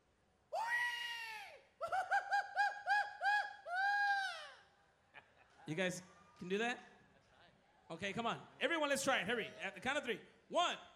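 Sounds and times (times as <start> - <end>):
person yelling a Mexican grito: 0.6 - 4.6
speech: 5.7 - 6.9, 7.9 - 10.9.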